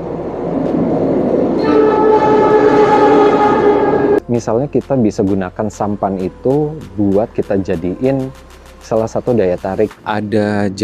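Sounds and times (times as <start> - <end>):
train rumbling past: 0.0 - 4.6
train horn blast: 1.6 - 4.2
speech: 4.4 - 10.8.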